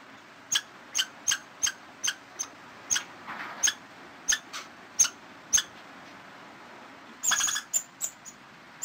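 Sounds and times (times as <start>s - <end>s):
faint steady background noise: 0.0s - 8.8s
squirrel chirping: 0.5s - 5.7s, 7.2s - 8.8s.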